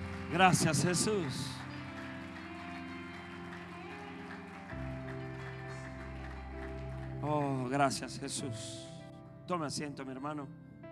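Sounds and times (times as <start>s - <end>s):
crowd clapping steadily and energetically: 0.0s - 8.3s
sustained organ-like music: 0.0s - 9.1s
speech: 0.3s - 1.6s, 7.3s - 8.9s, 9.5s - 10.7s.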